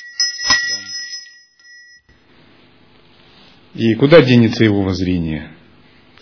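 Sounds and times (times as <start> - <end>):
small hand bell being struck: 0.0 - 2.2
speech: 3.8 - 5.6.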